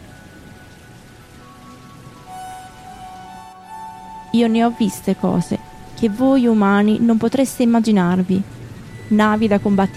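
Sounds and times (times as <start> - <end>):
heavy rain pouring: 0.0 - 9.9
speech: 4.4 - 8.5, 9.1 - 9.9.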